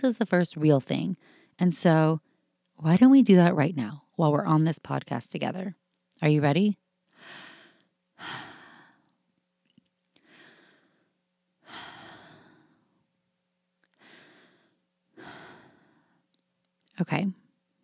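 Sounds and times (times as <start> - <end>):
speech: 0.0 - 7.4, 17.0 - 17.4
deep slow breaths: 7.1 - 9.2, 10.1 - 13.0, 13.9 - 16.3.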